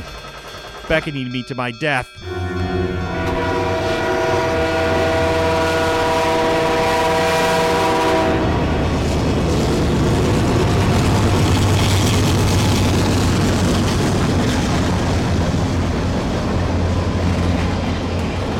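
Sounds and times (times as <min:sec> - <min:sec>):
rumble and clatter of train rolling past: 0:00.0 - 0:18.5
speech: 0:00.9 - 0:02.5
train whistle blaring: 0:02.2 - 0:08.9.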